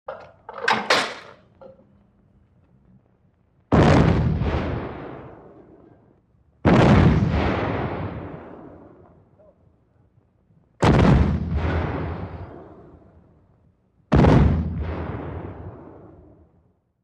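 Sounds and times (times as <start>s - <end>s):
modern artillery cannon shots outdoors: 3.7s - 9.6s, 10.8s - 13.2s, 14.1s - 16.5s.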